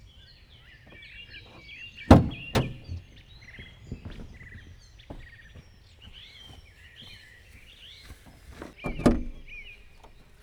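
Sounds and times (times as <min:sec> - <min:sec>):
2015 Opel convertible roof opening automatically: 0:01.0 - 0:05.3, 0:08.5 - 0:10.4.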